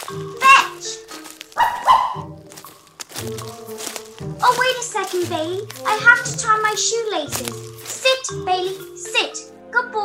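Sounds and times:
speech: 0.1 - 2.0, 4.7 - 10.0
puppy barking: 1.6 - 2.3.

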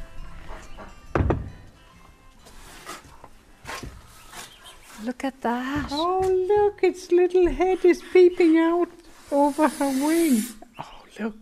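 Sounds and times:
door thudding shut: 1.1 - 1.5
speech: 5.0 - 10.6, 11.2 - 11.3.

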